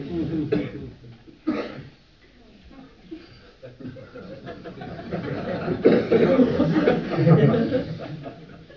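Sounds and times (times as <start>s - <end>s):
harsh coughing: 0.5s - 2.0s, 5.8s - 7.0s
laughter: 3.6s - 8.7s.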